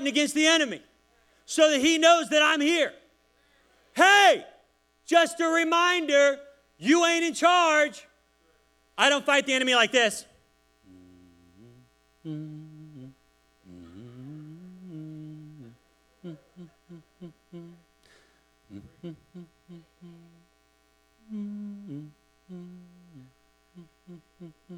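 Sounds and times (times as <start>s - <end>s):
speech: 0.0s - 0.9s, 1.5s - 3.0s, 4.0s - 4.5s, 5.1s - 8.1s, 9.0s - 10.3s, 12.2s - 12.6s
steady low electrical hum: 0.0s - 24.7s
man humming a slow hymn tune: 10.8s - 20.6s, 21.2s - 24.7s.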